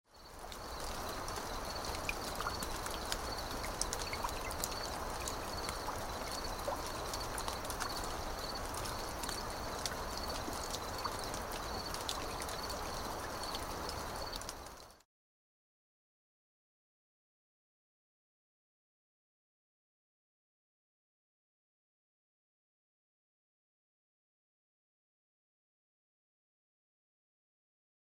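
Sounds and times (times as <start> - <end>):
crickets chirping: 0.1 - 14.9.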